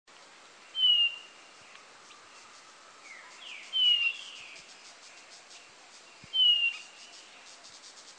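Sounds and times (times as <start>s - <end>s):
insect noise: 0.1s - 8.1s
Blue-naped chlorophonia Chlorophonia cyanea giving high thin downslurred whistles: 3.4s - 4.6s, 6.3s - 7.6s.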